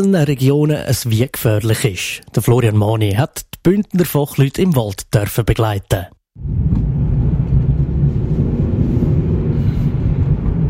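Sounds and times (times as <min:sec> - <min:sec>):
speech: 0:00.0 - 0:06.8
car engine and road noise driving into a forest in Graubünden: 0:06.4 - 0:10.6.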